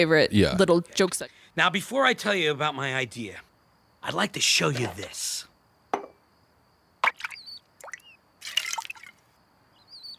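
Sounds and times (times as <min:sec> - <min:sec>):
speech: 0:00.0 - 0:05.5
small toy dipping into water: 0:07.0 - 0:09.2.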